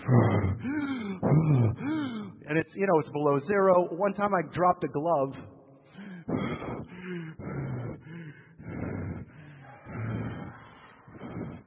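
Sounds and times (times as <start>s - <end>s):
person imitating labored breathing at high altitude: 0.0s - 2.4s, 5.9s - 11.6s
speech: 2.5s - 5.6s.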